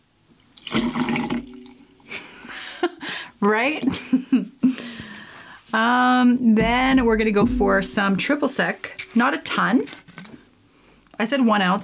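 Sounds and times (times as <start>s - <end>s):
gin poured into a small measure: 0.4s - 1.8s
speech: 3.4s - 4.5s, 5.7s - 10.0s, 11.2s - 11.8s.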